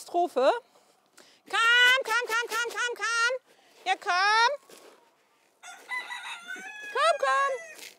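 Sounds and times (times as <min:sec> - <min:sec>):
speech: 0:00.1 - 0:00.7, 0:01.5 - 0:04.9, 0:07.0 - 0:07.9
rooster crowing: 0:05.6 - 0:07.8.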